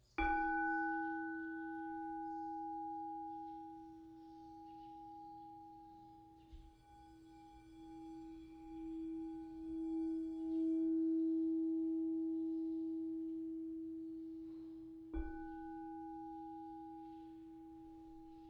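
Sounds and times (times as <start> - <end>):
quartz crystal singing bowl ringing in B at 432 Hz: 0.0 - 18.4.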